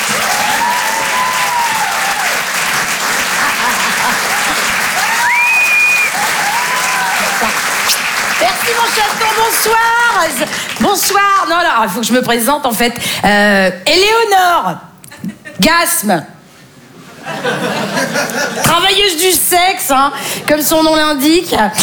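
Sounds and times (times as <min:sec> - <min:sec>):
audience applause at a comedy club show: 0:00.0 - 0:11.5
laughter: 0:02.6 - 0:05.1, 0:16.9 - 0:18.7
speech: 0:08.7 - 0:14.9, 0:15.6 - 0:16.3, 0:17.4 - 0:21.8.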